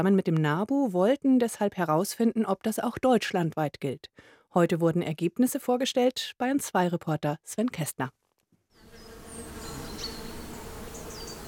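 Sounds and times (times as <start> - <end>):
speech: 0.0 - 8.2
bees and bumblebees buzzing in a spring meadow: 8.8 - 11.4
faint high bird chirps: 8.8 - 11.4.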